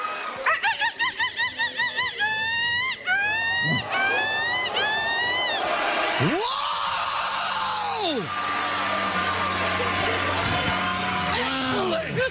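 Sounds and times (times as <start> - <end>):
laughter: 0.0 - 6.5, 8.2 - 12.2
loud crowd cheering: 0.0 - 12.2
woman imitating a seagull with squawks and swooping cry: 2.2 - 5.6.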